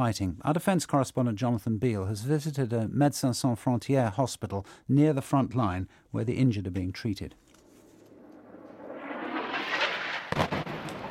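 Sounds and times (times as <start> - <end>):
speech: 0.0 - 7.5
airstrike explosion on the front line in the battle for Mosul: 8.1 - 11.1.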